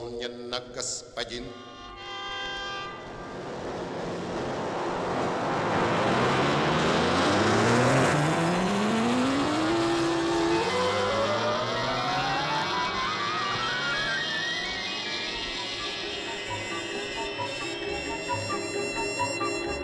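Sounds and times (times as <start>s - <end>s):
speech: 0.2s - 1.7s
car engines whining as vehicles accelerate: 1.8s - 19.8s
many cars speeding past in dense traffic: 2.6s - 16.1s.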